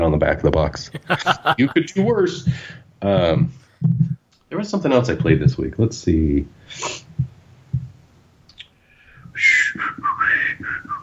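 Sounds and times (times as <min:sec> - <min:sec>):
speech: 0:00.0 - 0:07.3, 0:09.4 - 0:10.0
laughter: 0:01.0 - 0:02.1
person whistling a short wandering tune: 0:09.3 - 0:11.0.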